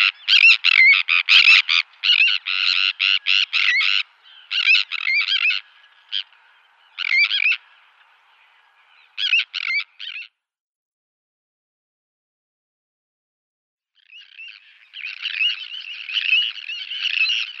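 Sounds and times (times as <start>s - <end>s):
Sandwich tern giving harsh grating rasping calls: 0.0s - 10.3s, 14.0s - 17.5s.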